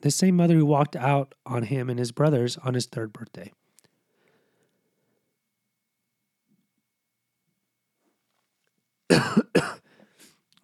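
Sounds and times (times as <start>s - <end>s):
speech: 0.0s - 3.6s
person coughing: 9.1s - 9.9s.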